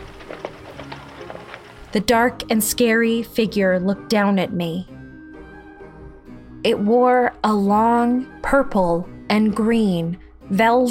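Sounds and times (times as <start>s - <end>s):
hollow hoof clops from a dark horse slowing to a stop: 0.0s - 2.2s
speech: 1.9s - 4.9s, 6.6s - 10.8s.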